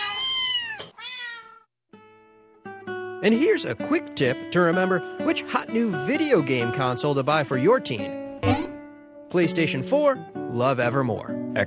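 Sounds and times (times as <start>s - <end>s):
stray feral cat meowing: 0.0s - 1.7s
speech: 3.2s - 8.6s, 9.3s - 11.6s.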